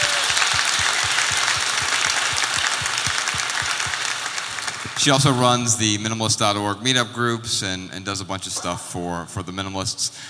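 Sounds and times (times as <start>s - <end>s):
audience applause: 0.0s - 5.2s
speech: 5.0s - 10.2s.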